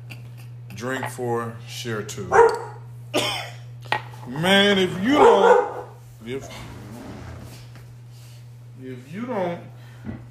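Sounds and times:
speech: 0.8 - 3.4, 4.3 - 5.7, 6.3 - 6.8, 8.8 - 10.2
guard dog barking: 2.3 - 2.8, 5.2 - 6.0.

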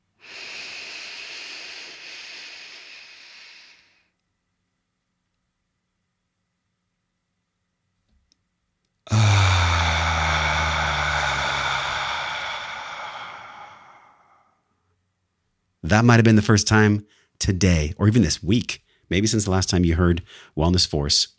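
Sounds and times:
loud voiced exhale: 0.2 - 4.0, 9.1 - 14.6
deep breath in through the nose: 0.2 - 4.1, 9.1 - 14.6
speech: 15.9 - 21.3.

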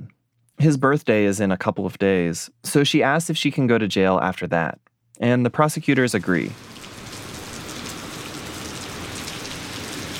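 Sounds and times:
speech: 0.6 - 6.8
heavy rain on hard surfaces outside a courthouse in Paris Texas: 6.5 - 10.1.

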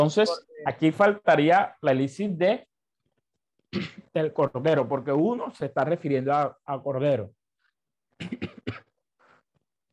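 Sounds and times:
speech: 0.0 - 2.7, 3.7 - 7.4, 8.2 - 8.8
person coughing harshly: 3.7 - 4.1, 8.2 - 9.1.

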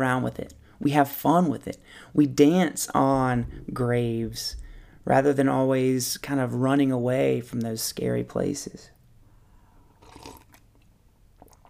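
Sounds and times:
speech: 0.0 - 9.0
person sipping pumpkin spice coffee with cream and stevia: 9.9 - 11.6.

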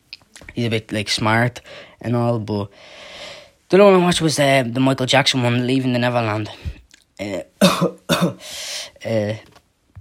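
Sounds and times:
speech: 0.6 - 9.6
harsh throaty person coughing: 7.6 - 8.5.

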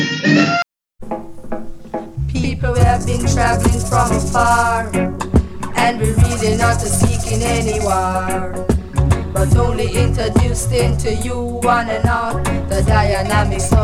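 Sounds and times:
song with sung vocal line over steady bass and full instrumentation: 2.2 - 13.8
speech: 2.6 - 5.3, 5.9 - 8.8, 9.4 - 13.8.

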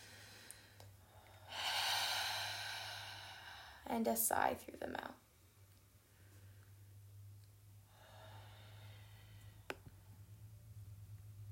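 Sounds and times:
long deep breath drawn in through the nose: 0.0 - 3.8, 7.9 - 9.7
speech: 4.0 - 5.2.

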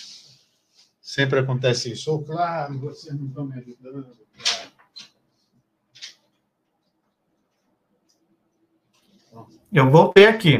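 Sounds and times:
faint room noise: 0.0 - 10.5
speech: 1.2 - 4.5, 9.7 - 10.5
door being closed: 4.4 - 5.2.

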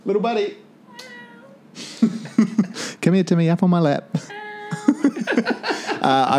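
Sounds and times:
speech: 0.1 - 0.6, 3.0 - 4.4, 5.4 - 6.3
female rescue cat meowing: 0.8 - 1.8, 4.3 - 5.1
laughter: 1.9 - 2.8, 4.3 - 6.3.

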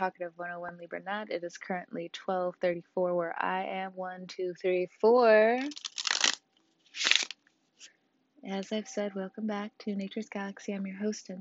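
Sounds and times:
speech: 0.0 - 5.9, 7.0 - 7.2, 8.4 - 11.3
deck of cards being shuffled during a card reading: 5.6 - 7.4.

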